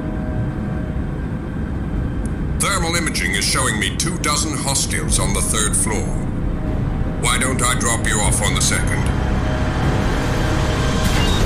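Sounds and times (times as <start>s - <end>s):
aircraft engine humming in flight with faint whine: 0.0s - 11.4s
speech: 2.9s - 6.3s, 7.6s - 9.2s.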